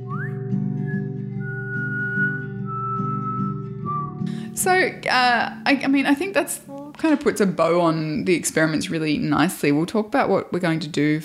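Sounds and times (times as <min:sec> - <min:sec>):
person whistling long held notes: 0:00.0 - 0:04.3
speech: 0:04.6 - 0:11.2.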